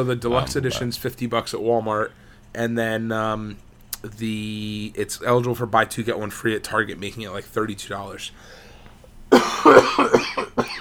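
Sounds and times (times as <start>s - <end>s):
speech: 0.0s - 8.6s
harsh rasping coughing fit: 8.8s - 10.7s.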